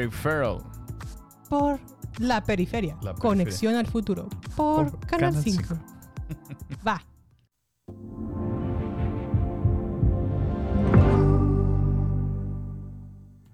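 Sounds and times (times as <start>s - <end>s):
speech: 0.0s - 0.8s, 1.5s - 7.1s
full sustained chord of a streaming intro sound: 7.9s - 13.4s
deep throbbing bass pulses of a streaming intro sound: 8.4s - 13.4s.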